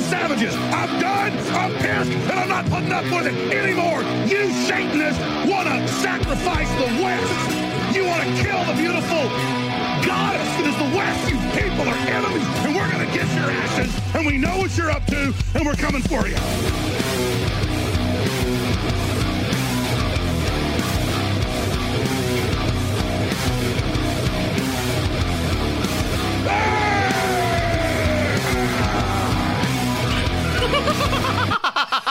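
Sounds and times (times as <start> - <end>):
loud dense distorted music: 0.0 - 32.1
speech: 0.2 - 17.8
harsh raw scream: 25.3 - 30.8
laughter: 26.7 - 32.1.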